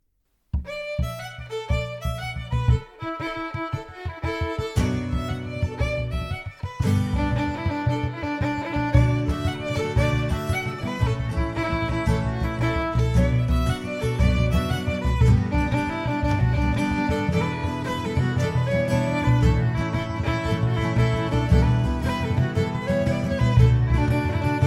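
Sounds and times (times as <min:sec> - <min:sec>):
bodhrán frame drum: 0:00.5 - 0:24.6
fiddle playing an instrumental jig: 0:00.6 - 0:24.6
guitar: 0:00.6 - 0:24.6.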